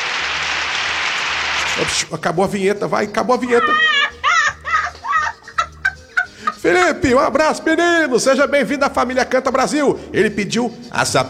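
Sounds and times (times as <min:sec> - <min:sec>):
audience applause for a singer's debut on a roots-music show: 0:00.0 - 0:02.0
speech: 0:01.8 - 0:04.0, 0:06.6 - 0:11.2
laughter: 0:03.1 - 0:08.5.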